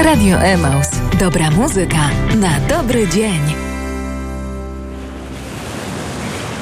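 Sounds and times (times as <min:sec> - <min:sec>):
speech: 0:00.1 - 0:03.7
ocean surf breaking waves in a disco-pop song intro: 0:03.6 - 0:06.5.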